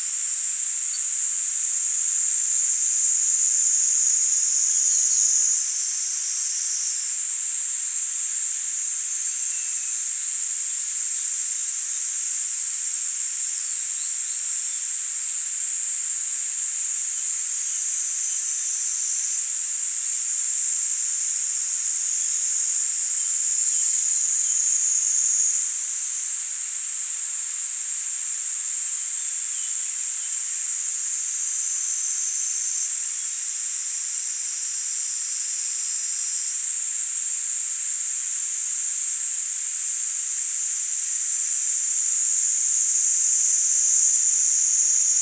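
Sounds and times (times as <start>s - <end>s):
Platypleura kaempferi cicada calling: 0.0s - 45.1s.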